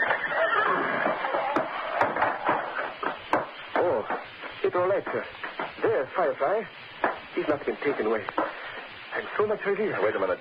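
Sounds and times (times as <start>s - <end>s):
horse whinnying and snorting in its stall at a stable: 0.0s - 1.4s
hoof knocking on wood: 1.0s - 6.1s, 7.0s - 8.6s
speech: 4.7s - 8.5s, 9.2s - 10.3s.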